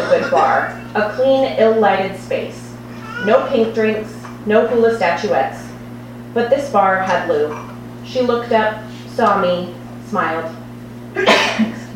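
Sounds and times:
faint steady hum: 0.0s - 11.9s
speech: 0.1s - 2.6s, 3.2s - 5.6s, 6.3s - 11.7s
person sneezing: 11.2s - 11.8s.

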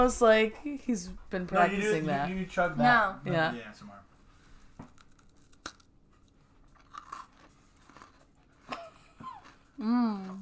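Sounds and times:
speech: 0.0s - 4.1s, 9.8s - 10.4s
crunchy cookies bitten and chewed for ASMR: 4.8s - 10.4s.

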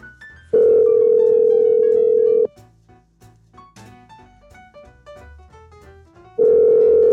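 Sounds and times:
soft music: 0.0s - 7.1s
phone line ringback tone: 0.6s - 2.5s, 6.4s - 7.1s.

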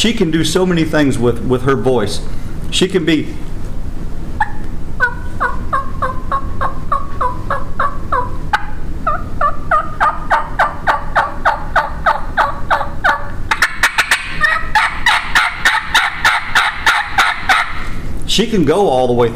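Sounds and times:
speech: 0.0s - 3.6s, 18.4s - 19.3s
turkey hen yelping imitated on a turkey call: 4.4s - 18.0s.

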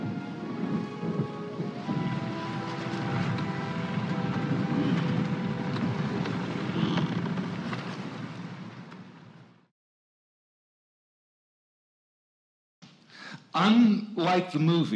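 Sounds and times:
deep thunder rumbling: 0.0s - 9.6s
loud dense pouring rain: 0.0s - 9.6s
speech: 13.6s - 14.9s.

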